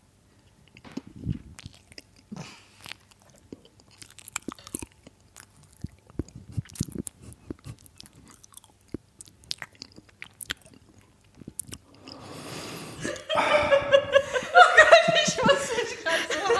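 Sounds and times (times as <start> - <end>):
crisp crunchy chewing at the microphone: 0.4 - 12.6
wet mouth sounds: 0.6 - 13.3
laughter: 13.0 - 16.5.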